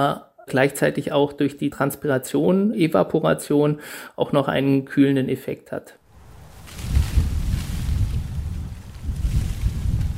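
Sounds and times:
speech: 0:00.0 - 0:06.0
gusty wind blowing across a green roof in Berlin: 0:06.1 - 0:10.1
herbs and small bushes rustling in wind: 0:06.1 - 0:10.1.

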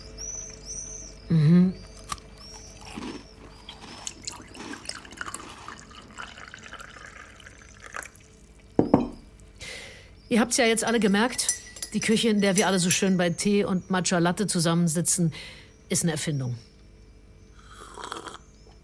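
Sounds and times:
birds chirping faintly: 0:00.0 - 0:18.8
low steady kitchen appliance hum: 0:00.0 - 0:18.8
speech: 0:01.3 - 0:01.6, 0:10.3 - 0:16.7
water dripping and trickling in a kitchen: 0:04.2 - 0:08.8
clinks in a kitchen: 0:10.8 - 0:13.2.

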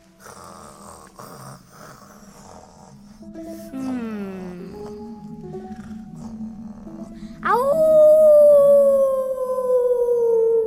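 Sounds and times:
person imitating a wolf howl in a guessing game: 0:07.4 - 0:10.6.

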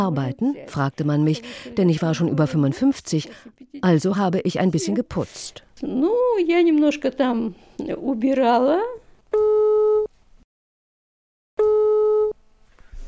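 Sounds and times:
speech: 0:00.0 - 0:09.5
buzzing electronic telephone line tone: 0:09.4 - 0:10.1, 0:11.6 - 0:12.4.

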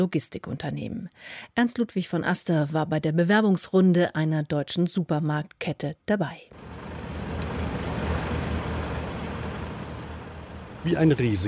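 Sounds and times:
speech: 0:00.0 - 0:06.6, 0:10.8 - 0:11.4
heavy trucks idling and creeping forward in a queue at a warehouse entrance: 0:06.6 - 0:11.4.

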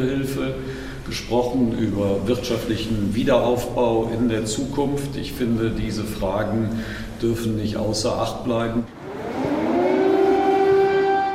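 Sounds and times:
speech: 0:00.0 - 0:09.0
civil defense air raid siren wailing in Kyiv: 0:08.9 - 0:11.3.

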